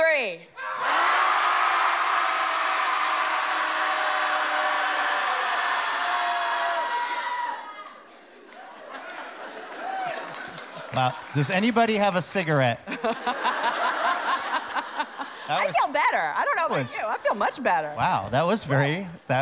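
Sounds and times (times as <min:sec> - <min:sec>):
group of people shouting together in a loud sustained roar: 0:00.6 - 0:07.9
laughter: 0:08.5 - 0:11.7, 0:12.8 - 0:16.1
speech: 0:11.0 - 0:13.5, 0:15.5 - 0:19.4.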